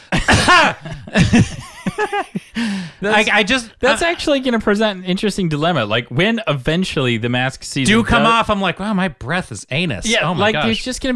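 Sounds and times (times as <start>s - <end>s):
person performing short pointed coughs: 0.0s - 1.4s
laughter: 0.1s - 4.2s
speech: 0.5s - 11.1s.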